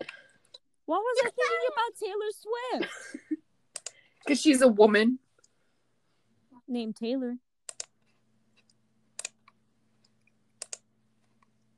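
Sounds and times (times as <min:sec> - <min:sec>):
low electrical hum: 0:00.0 - 0:11.7
speech: 0:00.9 - 0:03.3, 0:04.3 - 0:05.2, 0:06.7 - 0:07.4
computer mouse clicking: 0:03.7 - 0:04.0, 0:07.7 - 0:11.6.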